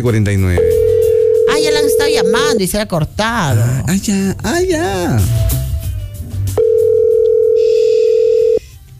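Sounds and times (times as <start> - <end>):
speech: 0.0 - 0.8, 1.6 - 5.5
steady electronic telephone dial tone during a call: 0.6 - 2.6, 6.6 - 8.7.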